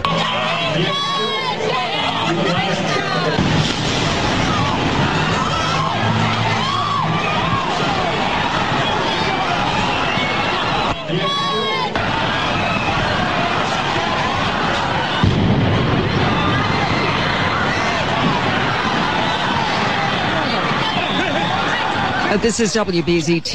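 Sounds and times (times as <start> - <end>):
people shouting: 0.0 - 22.4
constant roar of crowd noise and chatter: 0.0 - 23.5
speech: 0.8 - 1.0, 22.4 - 23.5
heavy explosions on a busy street in Boston: 3.4 - 8.1, 12.0 - 20.2.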